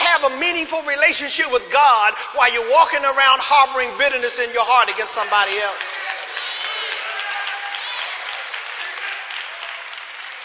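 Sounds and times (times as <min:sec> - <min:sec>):
speech: 0:00.2 - 0:06.1
church audience at a service applauding: 0:05.7 - 0:10.4.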